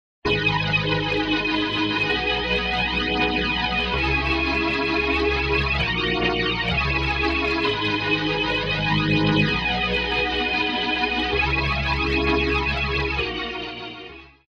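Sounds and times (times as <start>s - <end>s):
blurry wet cabinet organ: 0.3s - 14.0s.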